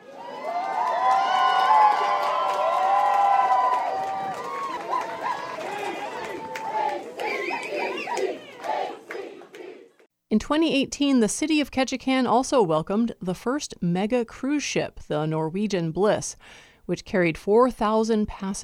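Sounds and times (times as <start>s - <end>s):
large enthusiastic crowd cheering and shouting a welcome home: 0.0s - 9.6s
speech: 10.4s - 18.6s.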